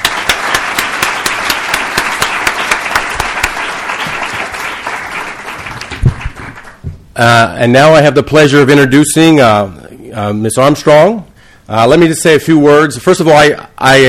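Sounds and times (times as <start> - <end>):
audience applauding: 0.0 - 6.8
speech: 7.2 - 14.0.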